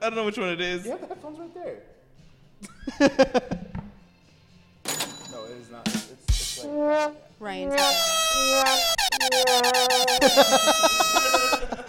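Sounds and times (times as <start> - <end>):
speech: 0.0 - 2.0, 2.6 - 3.7, 6.6 - 11.3
laughter: 2.6 - 3.7, 10.0 - 11.8
air horn sound effect blaring a loud brassy tone: 6.6 - 11.7.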